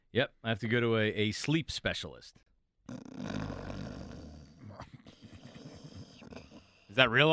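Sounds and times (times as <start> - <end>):
speech: 0.1 - 3.4, 7.0 - 7.3
person snoring loudly: 2.9 - 7.0.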